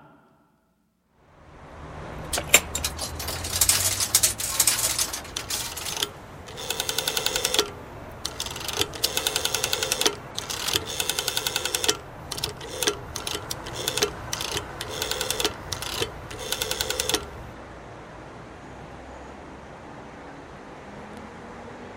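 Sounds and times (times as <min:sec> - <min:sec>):
rotary dial of an old public payphone turned with a finger: 0:02.3 - 0:17.6.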